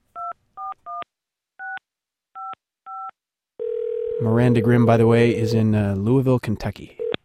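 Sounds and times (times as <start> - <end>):
steady loud phone line tone: 3.6 - 5.6
speech: 4.2 - 7.0.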